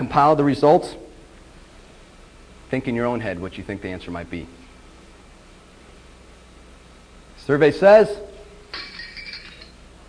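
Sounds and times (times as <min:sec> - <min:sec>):
speech: 0:00.2 - 0:01.0, 0:02.7 - 0:04.6, 0:07.5 - 0:08.9
bright tinkling scatter of glass shards: 0:08.7 - 0:09.8
sharp crash of breaking glass: 0:08.7 - 0:09.8.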